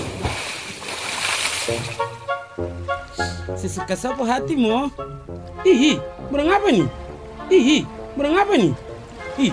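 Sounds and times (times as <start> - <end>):
splash of someone jumping into the sea while bathing at a beach: 0.0 - 2.1
speech: 1.7 - 2.1, 3.6 - 9.5.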